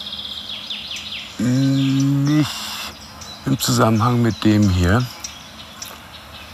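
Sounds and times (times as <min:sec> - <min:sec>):
garden warbler alarm calls: 0:00.0 - 0:06.5
speech: 0:03.5 - 0:05.2.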